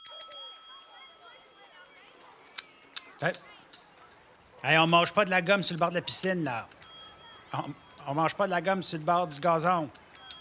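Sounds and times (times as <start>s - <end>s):
small bell ringing: 0.0s - 2.0s, 6.8s - 8.0s, 10.1s - 10.3s
faint voices: 0.0s - 10.3s
speech: 3.2s - 3.5s, 4.6s - 6.8s, 7.5s - 10.0s.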